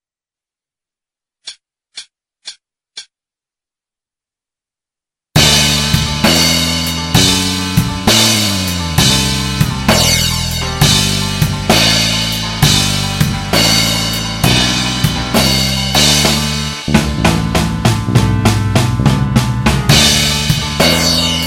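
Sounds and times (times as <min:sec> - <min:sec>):
guitar backing track: 0:05.4 - 0:21.4.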